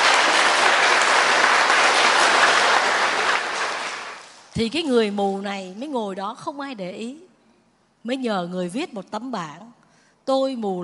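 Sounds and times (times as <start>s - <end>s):
audience applause: 0.0s - 4.5s
speech: 4.6s - 7.3s, 8.0s - 10.8s.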